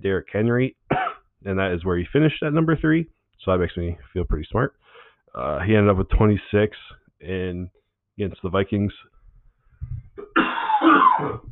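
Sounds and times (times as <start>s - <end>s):
speech: 0.0s - 0.8s, 1.4s - 9.1s, 9.8s - 11.5s
person coughing: 0.9s - 1.3s, 10.2s - 11.5s.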